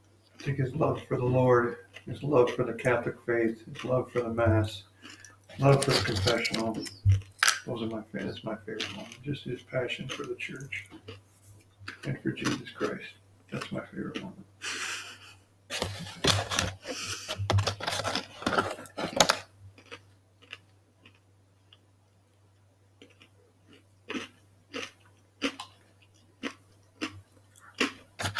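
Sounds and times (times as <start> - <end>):
crunching food at the microphone: 0.3 - 11.2, 11.8 - 14.4, 15.7 - 28.3
speech: 0.4 - 11.2, 12.0 - 14.8.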